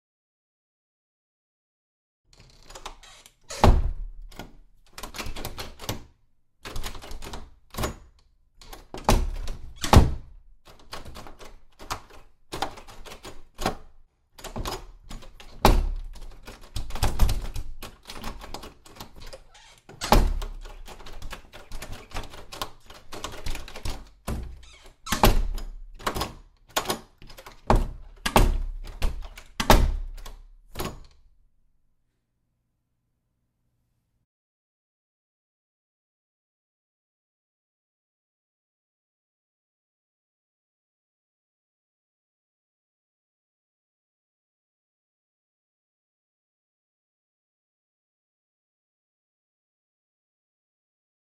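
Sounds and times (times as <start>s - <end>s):
door handle: 2.4s - 6.0s, 6.7s - 31.2s.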